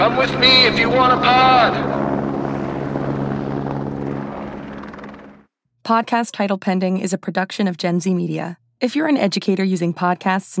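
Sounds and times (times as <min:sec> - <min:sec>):
speech: 0:00.0 - 0:02.1, 0:05.9 - 0:10.5
helicopter with heavy rotor thrum and engine whine flying overhead: 0:00.0 - 0:07.4.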